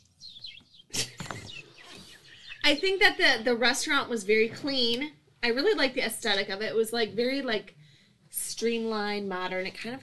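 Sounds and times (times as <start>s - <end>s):
seagulls calling with high sweeping cries: 0.2s - 3.2s
speech: 2.7s - 7.8s, 8.6s - 10.0s.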